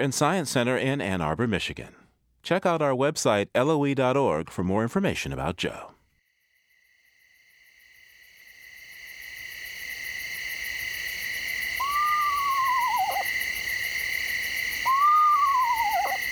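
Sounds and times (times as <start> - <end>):
speech: 0.0 - 5.9
chorus of night insects trilling: 6.2 - 16.3
eastern screech owl whinny call: 11.2 - 16.3.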